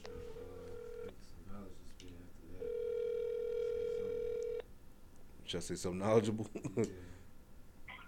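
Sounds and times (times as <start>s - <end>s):
electronic phone ringback tone: 0.0s - 1.1s, 2.6s - 4.6s
speech: 5.5s - 7.2s.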